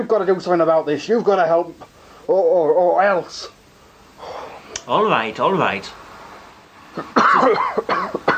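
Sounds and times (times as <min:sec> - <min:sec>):
speech: 0:00.0 - 0:03.6, 0:04.8 - 0:06.0, 0:07.0 - 0:08.3
harsh raspy cough: 0:06.9 - 0:08.3.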